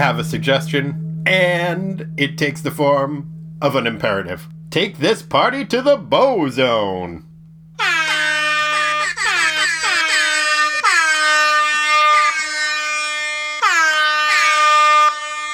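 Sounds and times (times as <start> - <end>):
speech: 0.0 - 8.0
low hum: 0.0 - 12.2
air horn blasts: 7.8 - 15.5.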